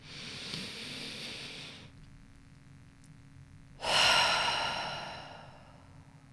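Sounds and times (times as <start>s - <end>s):
deep breaths in and out during a guided breathing exercise: 0.0s - 1.9s, 3.8s - 6.0s.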